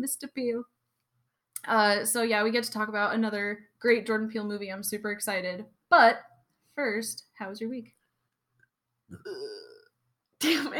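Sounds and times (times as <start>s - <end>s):
speech: 0.0s - 0.8s, 1.6s - 8.0s, 9.1s - 9.7s, 10.4s - 10.7s
suppressed burp: 9.1s - 10.0s.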